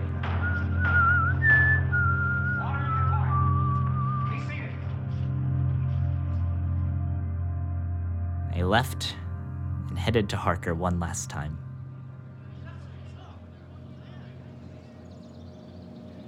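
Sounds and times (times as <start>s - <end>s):
man whistling a slow wavering melody while walking away: 0.3s - 4.5s
constant low droning hum: 5.0s - 16.2s
speech: 8.6s - 9.2s, 10.0s - 11.7s.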